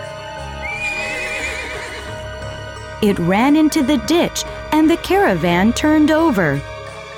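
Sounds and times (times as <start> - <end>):
frightened horse whinnying: 0.6 - 2.2
speech: 3.0 - 6.7.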